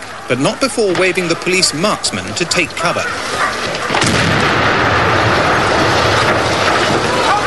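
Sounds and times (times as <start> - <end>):
speech: 0.3 - 4.5
heavy continuous roar and rumble after demolition charge blast: 3.9 - 7.4
short-fuse demolition charge explosion against an embassy balcony sill: 3.9 - 7.4.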